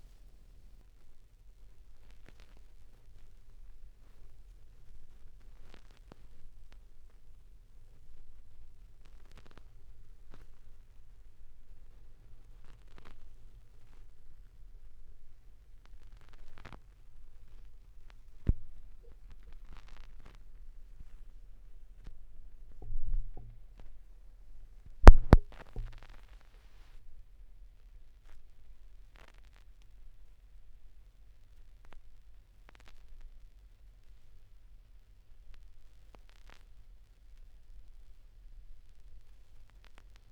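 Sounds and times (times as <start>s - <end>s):
vinyl record noise at 16 rpm: 0.0s - 40.3s.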